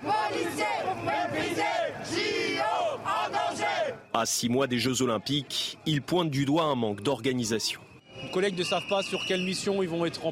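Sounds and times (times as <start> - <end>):
police officers marching in the streets of Paris chanting and shouting in unison: 0.0 - 6.0
speech: 4.2 - 10.3.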